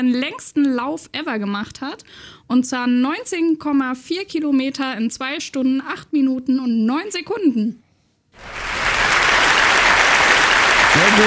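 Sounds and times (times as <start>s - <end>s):
speech: 0.0s - 7.8s, 8.4s - 8.8s, 11.0s - 11.2s
applause from many hands: 8.4s - 11.2s.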